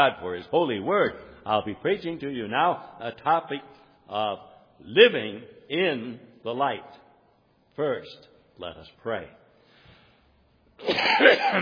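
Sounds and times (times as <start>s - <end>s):
speech: 0.0s - 7.0s, 7.8s - 9.4s, 10.8s - 11.6s
preacher coughing during a church sermon: 10.8s - 11.6s.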